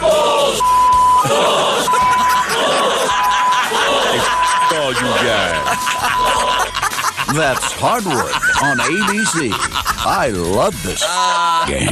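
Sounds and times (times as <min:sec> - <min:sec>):
crowd yelling and roaring: 0:00.0 - 0:07.6
steady electronic beep: 0:00.6 - 0:06.8
laughter: 0:01.2 - 0:11.8
speech: 0:05.7 - 0:11.8.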